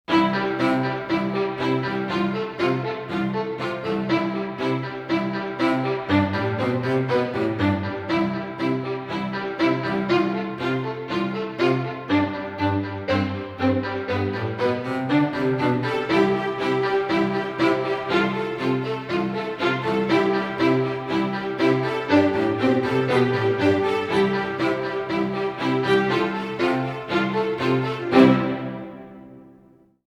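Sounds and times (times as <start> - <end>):
strings playing: 0.0 - 29.8.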